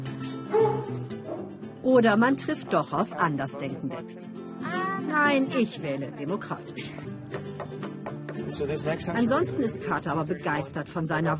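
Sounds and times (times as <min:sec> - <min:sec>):
dog barking at home: 0:00.5 - 0:01.6
speech: 0:01.9 - 0:04.3, 0:05.1 - 0:07.1, 0:08.5 - 0:11.3.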